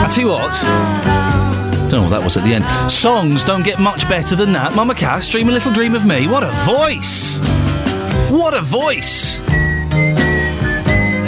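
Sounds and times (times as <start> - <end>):
gentle musical backing: 0.0 - 11.2
speech: 0.2 - 1.2, 1.9 - 7.6, 8.3 - 9.6
whistled melody of sustained gliding notes: 9.4 - 11.2.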